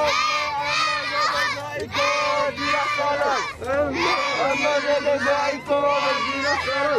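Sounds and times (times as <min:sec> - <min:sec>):
crowd of children shouting and yelling at a carnival: 0:00.0 - 0:06.9.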